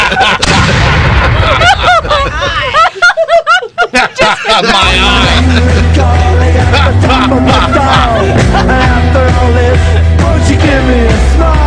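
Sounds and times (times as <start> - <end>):
laughter-like chatter: 0.0 - 9.3
cannon blast: 0.4 - 2.2
excited vocal sounds: 4.2 - 11.6.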